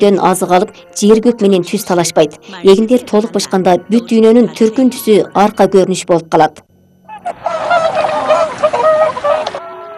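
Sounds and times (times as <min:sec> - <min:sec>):
speech: 0:00.0 - 0:08.1
flock of migrating wild geese honking: 0:07.0 - 0:09.9.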